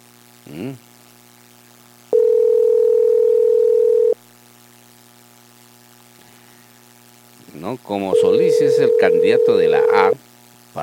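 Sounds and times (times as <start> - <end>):
speech: 0.5 - 0.9, 7.8 - 10.8
ringing tone of an unanswered telephone call: 2.1 - 4.2, 8.1 - 10.1.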